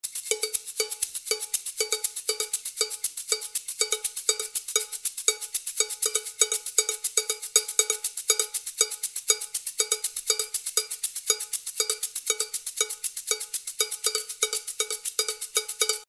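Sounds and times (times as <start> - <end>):
Afro-Cuban cowbell: 0.0 - 16.0.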